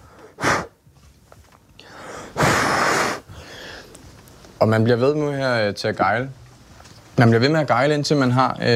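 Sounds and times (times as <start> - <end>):
breath blown onto a polished boot during boot polishing: 0.2 - 0.8, 2.2 - 3.5
speech: 4.6 - 6.4, 7.2 - 8.7.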